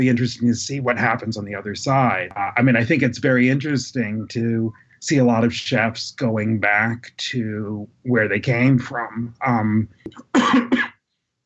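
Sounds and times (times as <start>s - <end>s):
speech: 0.0s - 10.9s
dry coughs: 10.1s - 11.0s.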